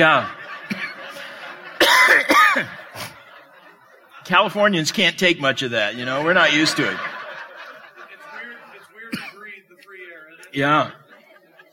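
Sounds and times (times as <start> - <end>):
speech: 0.0 - 0.8, 4.3 - 7.1, 10.6 - 11.0
laughter: 0.0 - 11.7
preacher coughing mid-sermon: 0.7 - 1.0, 1.8 - 2.7, 9.1 - 9.5.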